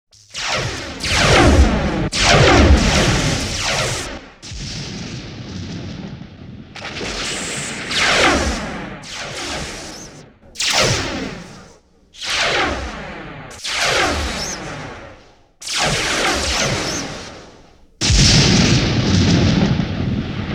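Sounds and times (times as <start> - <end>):
sci-fi space battle sound design: 0.2 - 20.5.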